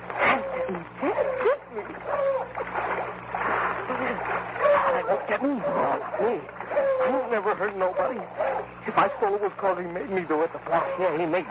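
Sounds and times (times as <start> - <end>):
footsteps splashing through shallow water and mud: 0.0 - 9.2
low steady hum: 0.0 - 11.4
speech: 7.6 - 11.4.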